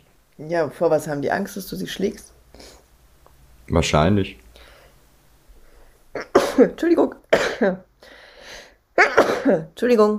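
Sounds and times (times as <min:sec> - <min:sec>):
speech: 0:00.4 - 0:02.7, 0:03.7 - 0:04.4, 0:06.1 - 0:08.2, 0:09.0 - 0:10.1
person sneezing: 0:06.2 - 0:07.7, 0:09.0 - 0:09.7.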